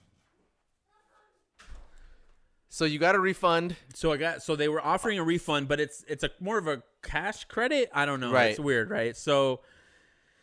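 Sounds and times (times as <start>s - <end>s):
door shutting with a solid thud: 1.6s - 2.2s
speech: 2.8s - 9.8s.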